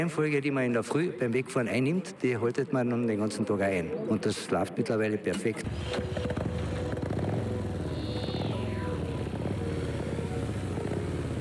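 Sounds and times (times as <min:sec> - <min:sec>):
speech: 0:00.0 - 0:06.4
motorcycles on a biker club group ride in Klagenfurt Austria rumbling past: 0:05.6 - 0:11.3.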